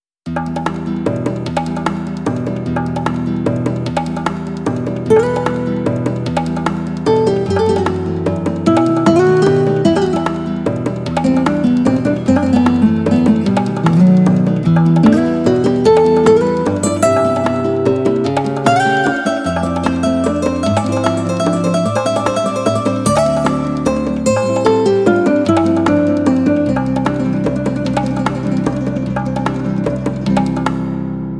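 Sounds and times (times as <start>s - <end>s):
acoustic track with reverb: 0.3s - 31.3s.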